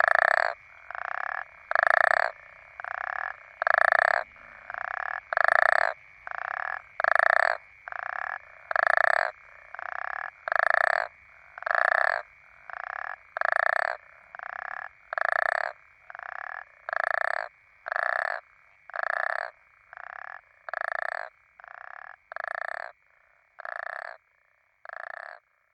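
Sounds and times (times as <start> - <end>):
several African common toads croaking: 0.0 - 25.7.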